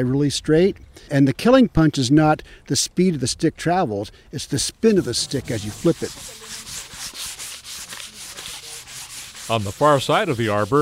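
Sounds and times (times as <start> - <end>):
speech: 0.0 - 6.7, 9.5 - 10.8
sandpaper rubbing against a handmade wooden bow: 4.8 - 10.8.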